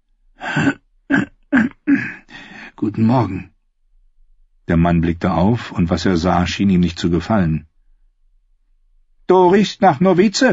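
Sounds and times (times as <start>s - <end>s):
person clearing throat: 0.4s - 2.4s
speech: 2.8s - 3.5s, 4.7s - 7.7s, 9.3s - 10.5s.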